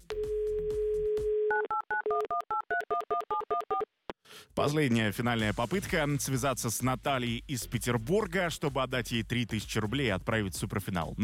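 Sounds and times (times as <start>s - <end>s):
telephone dial tone: 0.2s - 3.9s
speech: 4.6s - 11.2s.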